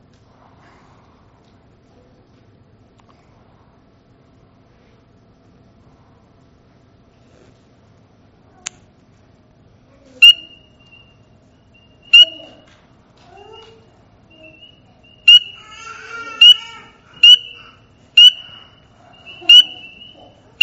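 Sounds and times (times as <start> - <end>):
spring peeper peeping: 10.2 - 11.1, 11.8 - 12.5, 14.3 - 15.6, 16.4 - 20.6.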